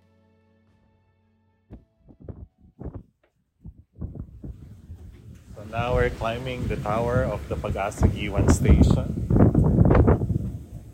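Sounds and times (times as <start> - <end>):
strong wind buffeting a microphone on a hilltop weather station tower in the Philippines: 1.7 - 10.9
speech: 5.7 - 9.2.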